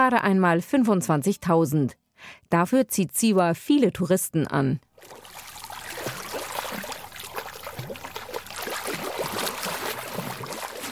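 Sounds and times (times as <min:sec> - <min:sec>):
speech: 0:00.0 - 0:05.3
people swimming and splashing in a very salty lake at Siwa: 0:05.0 - 0:10.9.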